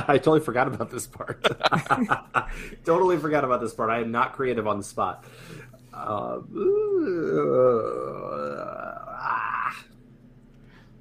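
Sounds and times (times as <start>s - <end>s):
speech: 0.0s - 9.9s
laughter: 1.3s - 2.7s
person voicing a drawn-out tortured groan of pain: 5.9s - 9.9s.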